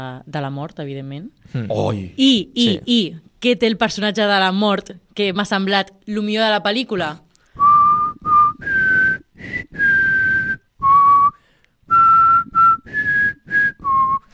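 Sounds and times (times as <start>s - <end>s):
speech: 0.0s - 7.3s
person whistling a short melody: 7.6s - 14.3s.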